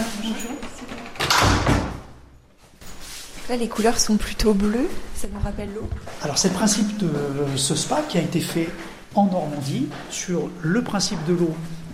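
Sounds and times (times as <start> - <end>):
backstage door of a spa in Normandy opening and swinging shut: 0.3 - 2.4
speech: 3.5 - 11.8.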